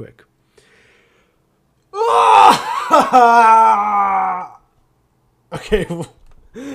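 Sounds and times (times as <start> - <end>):
speech: 0.0 - 0.3, 3.1 - 4.1, 5.5 - 6.7
loud cathartic human shout: 2.0 - 4.6.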